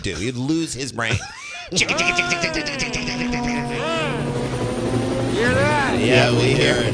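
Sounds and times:
speech: 0:00.0 - 0:03.9, 0:05.4 - 0:06.9
laughter: 0:00.0 - 0:06.9
helicopter flying overhead: 0:01.8 - 0:06.9.

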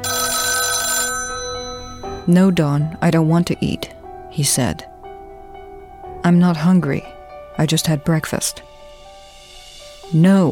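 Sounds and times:
telephone bell ringing in a hotel room: 0:00.0 - 0:02.9
speech: 0:02.3 - 0:04.9, 0:06.2 - 0:08.7, 0:10.1 - 0:10.5.

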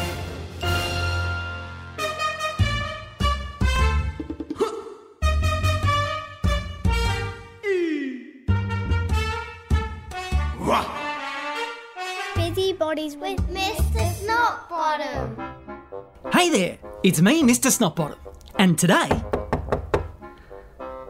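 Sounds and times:
bouncy upbeat theme song: 0:00.0 - 0:04.6, 0:05.2 - 0:07.6, 0:08.4 - 0:21.0
speech: 0:16.4 - 0:19.2
sharp knocks on a door: 0:19.0 - 0:20.2.

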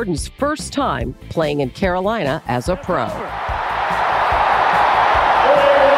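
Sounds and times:
speech: 0:00.0 - 0:04.0
large arena crowd roaring and cheering at buzzer-beater win: 0:02.7 - 0:05.9.

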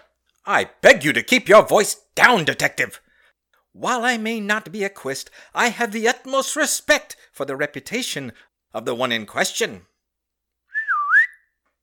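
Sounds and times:
speech: 0:00.5 - 0:03.0, 0:03.8 - 0:09.9
call whistle dipping and sliding in pitch: 0:10.7 - 0:11.6.

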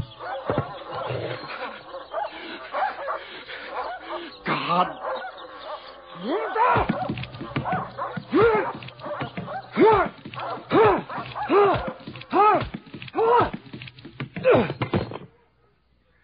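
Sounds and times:
laughter: 0:00.0 - 0:10.2
dogs barking: 0:00.0 - 0:13.9
speech: 0:04.7 - 0:05.1, 0:06.2 - 0:07.0.

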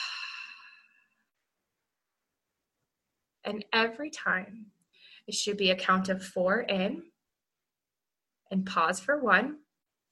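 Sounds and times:
slow exhale through the mouth after a deep breath in a calming breathing exercise: 0:00.0 - 0:01.1
speech: 0:03.5 - 0:07.1, 0:08.5 - 0:09.6.

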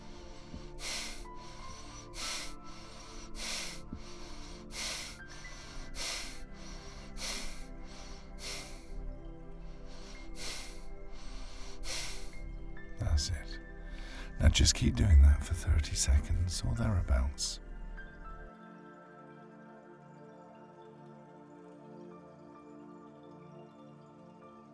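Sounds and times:
quick forceful breathing in and out: 0:00.0 - 0:12.5, 0:13.8 - 0:14.5
speech: 0:14.4 - 0:17.6.

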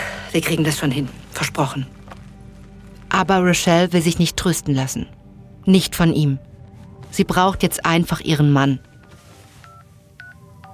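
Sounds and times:
speech: 0:00.3 - 0:02.0, 0:03.2 - 0:06.5, 0:07.1 - 0:08.9
phone keypad beeps dialing a number: 0:09.0 - 0:10.7.

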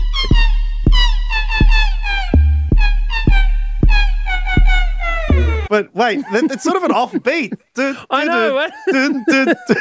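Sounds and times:
steady booming kick drum: 0:00.0 - 0:05.7
laughter: 0:05.3 - 0:09.7
speech: 0:05.8 - 0:09.7.

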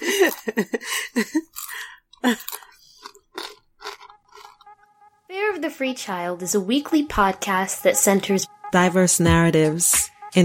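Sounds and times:
speech: 0:00.5 - 0:00.9, 0:06.1 - 0:10.4
chewing and crunching food: 0:01.4 - 0:04.9.

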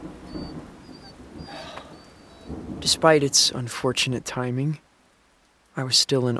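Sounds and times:
low steady rumble of thunder during a rainstorm: 0:00.0 - 0:04.8
wash of rain: 0:00.0 - 0:06.3
faint high whistling tones: 0:00.3 - 0:02.5
speech: 0:02.8 - 0:04.9, 0:05.8 - 0:06.3.

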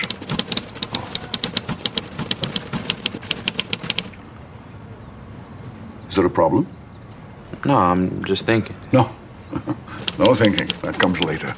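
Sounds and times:
typewriter keys clacking: 0:00.0 - 0:04.2, 0:10.0 - 0:11.5
speech: 0:06.2 - 0:06.8, 0:07.6 - 0:11.5
laughter: 0:09.4 - 0:11.5.

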